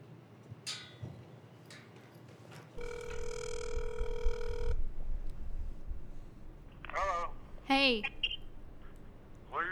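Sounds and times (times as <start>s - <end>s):
telephone ringback tone electronic burr: 2.8s - 6.2s
low hum: 2.8s - 9.7s
speech: 7.8s - 8.2s.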